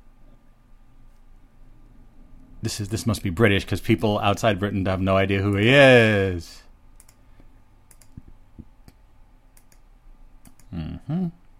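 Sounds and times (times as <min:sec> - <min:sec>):
speech: 0:02.6 - 0:06.6
sharp clicks: 0:07.0 - 0:07.2, 0:07.9 - 0:08.2, 0:09.6 - 0:10.7.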